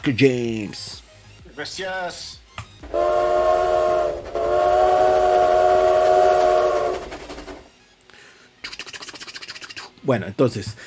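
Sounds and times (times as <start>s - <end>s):
speech: 0.0s - 1.0s, 1.6s - 3.7s, 10.0s - 10.8s
train horn blaring: 2.9s - 7.7s.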